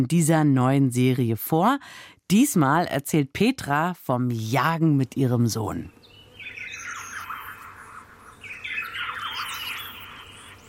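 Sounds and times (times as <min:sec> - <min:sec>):
speech: 0:00.0 - 0:06.0
birdsong: 0:05.7 - 0:10.6.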